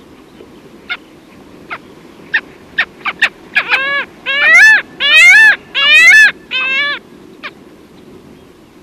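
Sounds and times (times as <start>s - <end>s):
Arctic skua calls: 1.7s - 7.6s.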